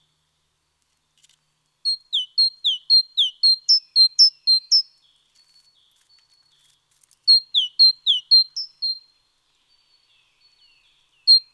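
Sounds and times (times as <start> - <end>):
Great tit Parus major calling: 1.9 - 4.9, 7.3 - 9.1, 11.3 - 11.5.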